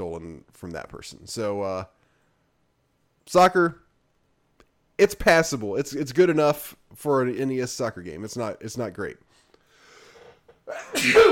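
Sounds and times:
speech: 0.0s - 2.0s, 3.3s - 3.8s, 5.0s - 9.3s, 10.7s - 11.3s
person sneezing: 10.7s - 11.3s.

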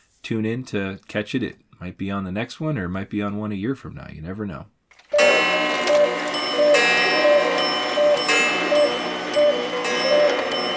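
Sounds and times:
speech: 0.3s - 4.8s
faint sustained ringing tone: 5.2s - 10.7s
many clocks ticking: 5.2s - 10.7s.

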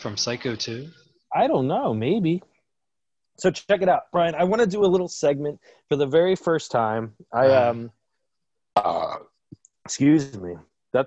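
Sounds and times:
speech: 0.0s - 2.5s, 3.4s - 8.0s, 8.8s - 9.3s, 9.9s - 11.0s
loud belch: 8.8s - 9.3s.

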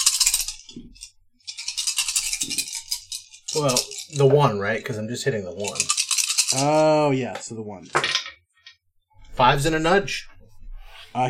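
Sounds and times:
dice rattling and clattering for a tabletop game combat roll: 0.0s - 4.6s, 5.6s - 6.9s, 7.8s - 8.8s
speech: 3.6s - 8.2s, 9.4s - 10.4s
dice tumbling onto a table with soft thuds: 7.9s - 8.4s.

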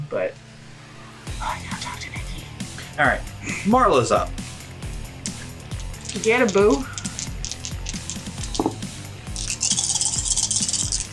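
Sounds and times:
speech: 0.1s - 0.5s, 3.0s - 4.4s, 6.1s - 6.9s
handful of dice rattling across a hard tabletop: 5.9s - 8.8s, 9.4s - 11.0s.

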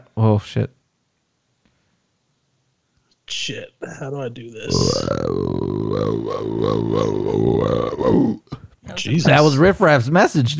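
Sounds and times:
speech: 0.2s - 0.8s, 3.3s - 10.5s
long loud burp: 4.7s - 8.5s.

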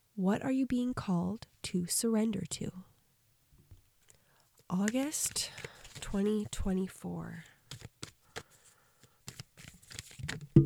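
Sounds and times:
speech: 0.2s - 2.9s, 4.7s - 7.5s
oracle cards shuffled with soft papery riffles and taps: 4.8s - 6.6s, 7.6s - 10.6s.

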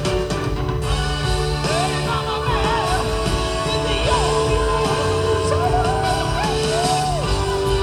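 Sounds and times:
crowd noise: 0.0s - 7.8s
loud dense band with a drummer: 0.0s - 7.8s
elderly singer yelling a song in high strained falsetto: 1.7s - 7.8s.

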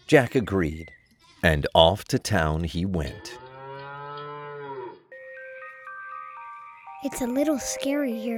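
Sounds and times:
speech: 0.1s - 3.4s, 7.0s - 8.3s
cow mooing: 3.0s - 5.1s.

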